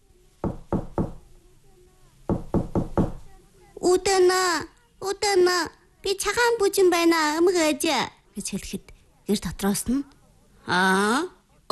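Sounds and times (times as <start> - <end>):
knocking on a wooden house door: 0.4 - 1.2, 2.3 - 3.3
speech: 3.9 - 11.7.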